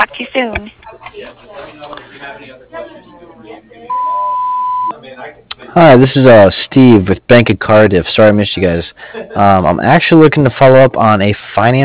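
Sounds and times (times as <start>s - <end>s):
speech: 0.4s - 2.8s, 5.8s - 11.8s
answering machine beep: 3.9s - 4.9s
recorded voice speaking: 4.9s - 11.8s.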